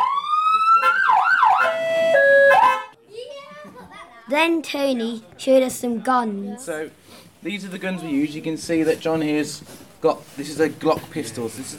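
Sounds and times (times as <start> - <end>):
police car siren wailing and warbling: 0.0 - 2.9
speech: 4.3 - 11.7.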